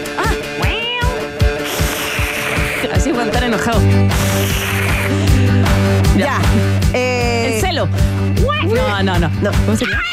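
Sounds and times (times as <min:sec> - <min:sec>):
person imitating cat meows: 0:00.2 - 0:02.9, 0:04.2 - 0:05.2
rhythmic low thumping: 0:01.6 - 0:09.6
speech: 0:03.2 - 0:10.1.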